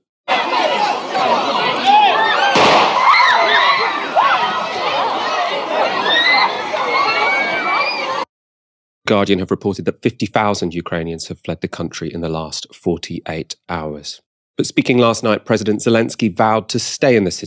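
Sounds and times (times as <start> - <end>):
large crowd shouting and chattering at the central railway station in Kiev Ukraine: 0.0 - 8.3
gunshot fired to disperse crowds at the central railway station in Kiev Ukraine: 2.5 - 3.1
speech: 9.1 - 17.4.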